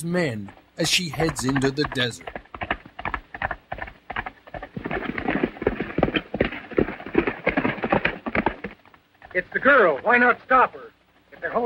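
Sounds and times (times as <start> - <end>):
speech: 0.0 - 2.4, 9.4 - 11.6
horse hooves galloping through a grove of trees: 0.0 - 10.4.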